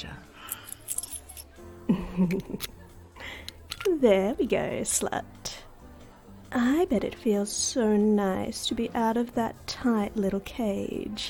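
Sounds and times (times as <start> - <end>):
keys jangling as they are handed over: 0.5 - 1.6, 3.4 - 3.9
laughter: 1.9 - 2.8
speech: 1.9 - 2.8, 3.9 - 5.6, 6.5 - 11.2.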